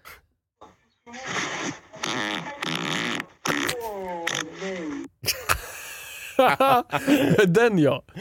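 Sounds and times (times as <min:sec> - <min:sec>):
drawn-out tonal fart: 0:01.1 - 0:05.1
laughter: 0:05.2 - 0:07.6
speech: 0:06.4 - 0:08.1.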